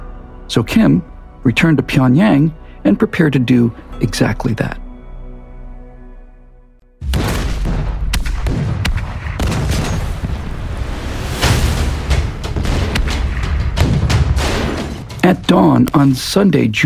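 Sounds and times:
speech: 0:00.5 - 0:04.8, 0:15.5 - 0:16.8
massive artillery barrage along a front line at dawn: 0:07.0 - 0:16.0.

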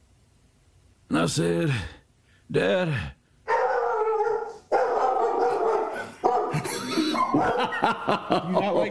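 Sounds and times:
speech: 0:01.2 - 0:03.2, 0:07.3 - 0:08.8
female dog barking in a house: 0:03.5 - 0:07.8
laughter: 0:06.1 - 0:08.8.

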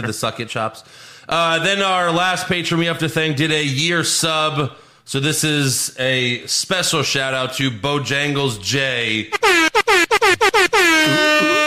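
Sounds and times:
speech: 0:00.0 - 0:09.6
air horn blasts: 0:09.3 - 0:11.6.

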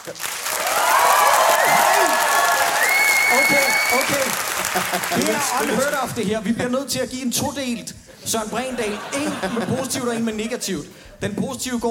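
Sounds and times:
speech: 0:00.0 - 0:00.4, 0:03.3 - 0:11.8
crowd clapping: 0:00.0 - 0:06.1
whistle-like cheering voices: 0:00.7 - 0:04.3
laughter: 0:01.6 - 0:06.1, 0:08.2 - 0:11.3.

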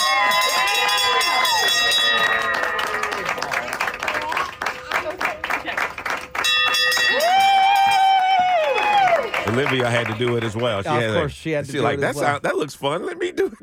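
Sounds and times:
hand bell ringing: 0:00.0 - 0:03.3, 0:06.4 - 0:08.0
people whooping and cheering: 0:00.0 - 0:05.3, 0:06.9 - 0:09.8
people clapping: 0:00.0 - 0:11.4
speech: 0:09.6 - 0:13.6.

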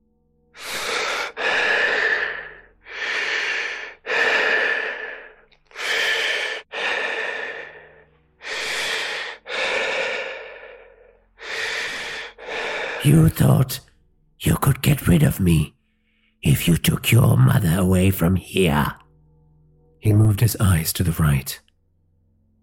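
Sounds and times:
anxious heavy breathing: 0:00.6 - 0:13.6
speech: 0:13.0 - 0:15.8, 0:16.4 - 0:19.0, 0:20.0 - 0:21.7.

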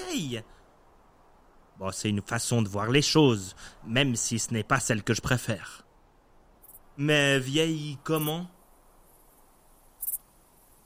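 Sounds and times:
speech: 0:00.1 - 0:00.6, 0:01.8 - 0:05.8, 0:07.0 - 0:08.6
grasshoppers stridulating in a high-pitched rasping burst: 0:06.6 - 0:10.8.

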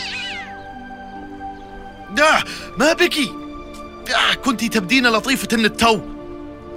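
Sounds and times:
black cat making a strange high-pitched meow: 0:00.0 - 0:00.6
speech: 0:02.1 - 0:03.4, 0:04.1 - 0:06.1.

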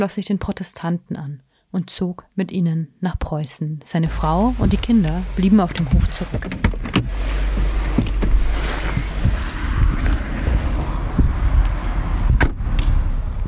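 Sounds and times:
speech: 0:00.0 - 0:07.5
car engine low rumble pulling up and stopping: 0:04.1 - 0:13.4
car tires crunching and clicking: 0:04.1 - 0:13.4.

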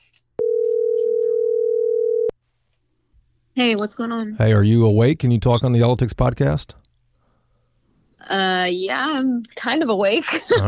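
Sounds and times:
telephone ringing tone while placing a call: 0:00.4 - 0:02.3
speech: 0:03.6 - 0:06.8, 0:08.2 - 0:10.6.

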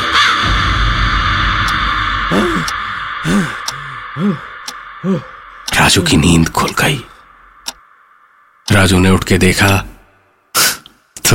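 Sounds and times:
crow cawing loudly and harshly: 0:00.0 - 0:05.7
low rumbling noise: 0:00.4 - 0:10.1
steady hissing hum: 0:02.2 - 0:11.1
speech: 0:04.2 - 0:07.1, 0:08.7 - 0:09.9.

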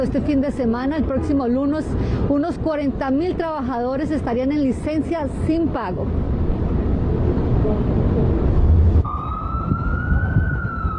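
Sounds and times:
speech: 0:00.0 - 0:06.3
busy street traffic rumble: 0:00.0 - 0:10.9
emergency vehicle siren wailing: 0:09.0 - 0:10.9.

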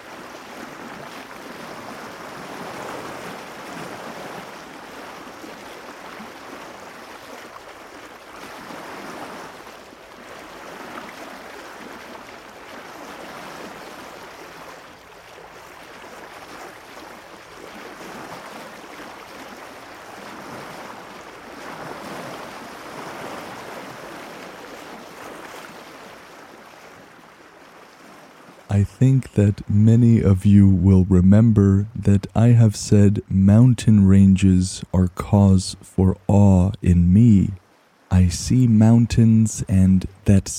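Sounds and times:
North Atlantic Ocean waves surging and washing: 0:00.0 - 0:27.2, 0:28.8 - 0:40.5
speech: 0:28.8 - 0:40.5.

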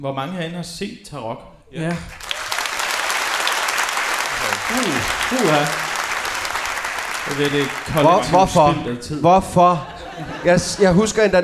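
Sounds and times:
speech: 0:00.0 - 0:02.3, 0:04.7 - 0:05.9, 0:07.3 - 0:11.4
live audience clapping: 0:01.8 - 0:08.9
laughter: 0:02.7 - 0:11.4.

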